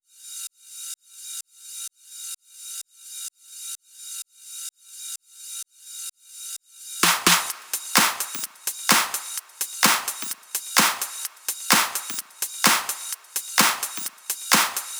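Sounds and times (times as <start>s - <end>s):
progressive drums: 7.0s - 14.9s.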